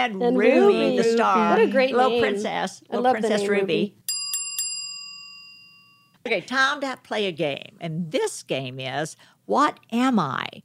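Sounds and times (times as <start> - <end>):
speech: 0.0 - 4.0, 6.3 - 10.6
small bell ringing: 4.0 - 6.2.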